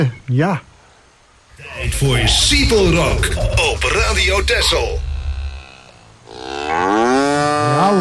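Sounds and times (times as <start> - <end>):
speech: 0.0 - 0.7, 1.6 - 5.1, 6.4 - 8.0
cow mooing with rising wavering pitch: 5.1 - 8.0.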